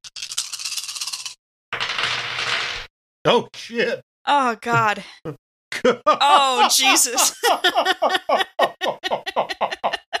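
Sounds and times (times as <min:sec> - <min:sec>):
big handful of dice rattling: 0:00.0 - 0:02.8
speech: 0:03.2 - 0:10.0
laughter: 0:05.7 - 0:10.1.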